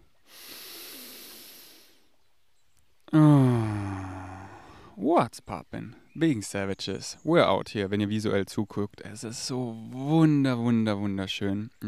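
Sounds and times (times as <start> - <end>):
deep breath with airy inhale and voiced sighing exhale: 0.2 - 2.1, 3.2 - 5.0
speech: 5.1 - 11.8.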